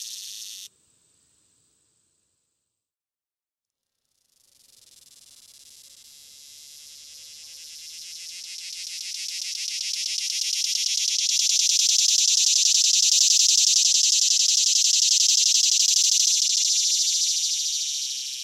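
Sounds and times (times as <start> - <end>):
swamp cicada buzzing drone: 0.0 - 0.7, 4.6 - 18.4.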